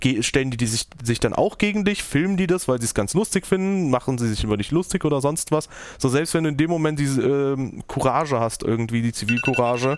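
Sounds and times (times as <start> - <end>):
speech: 0.0 - 9.9
alarm clock ringing with a steady high electronic tone: 9.3 - 9.9.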